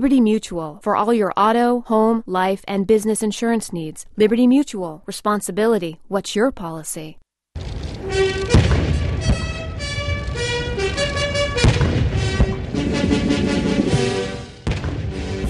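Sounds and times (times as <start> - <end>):
speech: 0.0 - 8.2
cannon salute booms at a formal state ceremony: 7.6 - 15.4
brass band playing a stately anthem outdoors: 8.0 - 15.4.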